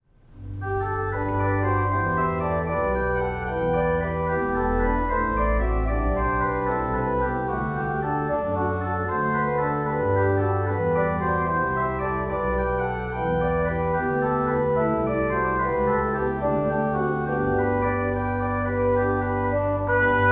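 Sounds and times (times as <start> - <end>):
organ music: 0.4 - 20.3.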